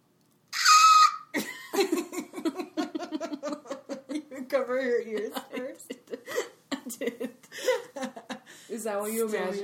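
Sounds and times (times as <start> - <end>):
person's shrill vocal screech imitating a creature's cry: 0.5 - 1.3
laughter: 1.4 - 4.5, 5.2 - 8.5
speech: 4.6 - 5.7, 8.8 - 9.6.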